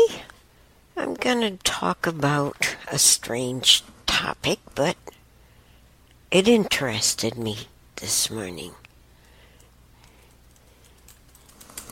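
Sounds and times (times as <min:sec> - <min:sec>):
hum: 0:00.0 - 0:11.9
speech: 0:01.0 - 0:05.2, 0:06.3 - 0:08.8
keyboard typing: 0:09.6 - 0:11.9.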